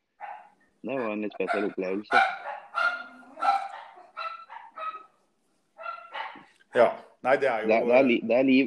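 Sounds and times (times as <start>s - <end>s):
several dogs barking and yipping: 0.1s - 5.2s, 5.8s - 6.6s
speech: 0.8s - 2.4s, 6.8s - 8.6s.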